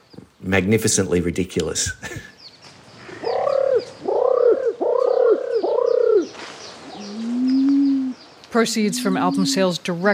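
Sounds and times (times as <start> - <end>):
speech: 0.5 - 2.3, 8.5 - 10.1
Christmas Island imperial pigeon hooting: 3.0 - 9.8.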